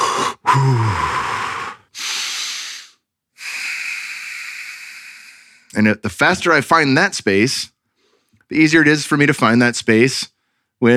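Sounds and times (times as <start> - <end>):
slow controlled breathing demonstration: 0.0 - 5.7, 7.9 - 8.4
speech: 0.6 - 1.2, 5.8 - 7.8, 8.5 - 10.9.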